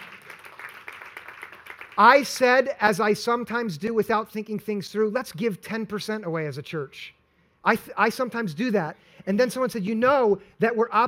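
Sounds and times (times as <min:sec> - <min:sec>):
one person clapping in a church audience: 0:00.0 - 0:02.0
speech: 0:02.0 - 0:11.0.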